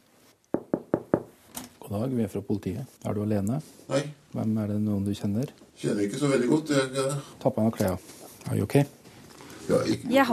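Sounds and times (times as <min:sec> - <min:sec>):
firm knocks on a wooden hotel room door: 0:00.5 - 0:01.4
speech: 0:01.9 - 0:09.0, 0:09.7 - 0:10.3.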